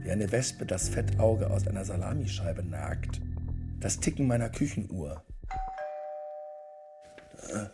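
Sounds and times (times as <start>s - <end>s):
speech: 0.1s - 5.3s, 7.5s - 7.7s
quiet doorbell chime: 5.5s - 7.3s.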